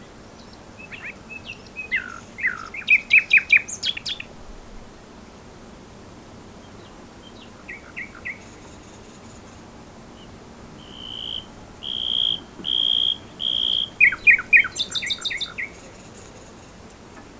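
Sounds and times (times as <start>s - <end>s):
common nightingale Luscinia megarhynchos singing: 0.4s - 4.4s, 6.8s - 8.6s, 10.1s - 16.1s.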